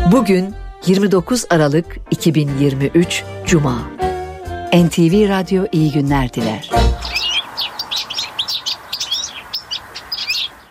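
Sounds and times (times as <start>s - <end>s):
speech: 0.1s - 4.0s, 4.7s - 7.1s
European goldfinch chirping in Switzerland: 5.8s - 10.6s.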